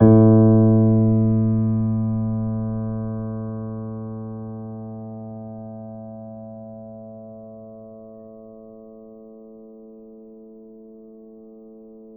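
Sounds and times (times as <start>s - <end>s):
soft grand piano note A1: 0.0s - 7.9s.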